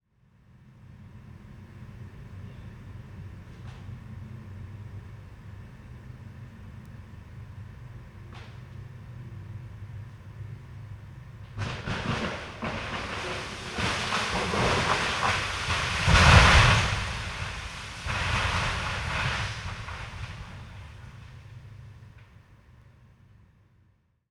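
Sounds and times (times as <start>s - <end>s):
tree crashing down: 11.4s - 21.7s.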